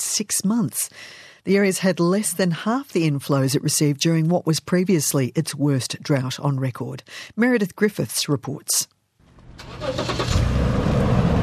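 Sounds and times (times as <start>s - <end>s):
speech: 0.2s - 9.0s, 9.6s - 10.3s
car driving down a residential street in a tiny rural town: 9.3s - 11.4s.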